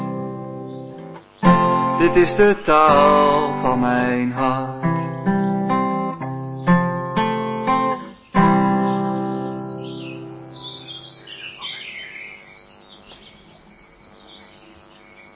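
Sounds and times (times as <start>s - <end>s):
music chord ringing out: 0.0s - 11.8s
birds singing and chirping over a heath: 0.0s - 15.3s
speech: 2.0s - 5.0s.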